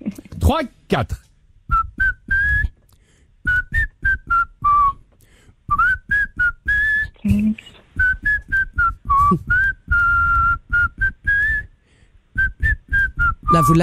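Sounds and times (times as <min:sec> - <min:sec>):
speech: 0:00.5 - 0:01.3, 0:13.6 - 0:13.8
man whistling a French pop song melody: 0:01.7 - 0:02.8, 0:03.4 - 0:05.1, 0:05.7 - 0:13.8.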